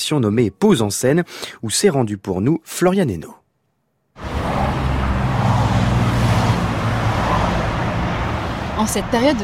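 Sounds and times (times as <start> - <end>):
speech: 0.0 - 3.4, 8.8 - 9.4
motorway traffic roar at a motorway rest area: 4.2 - 9.4.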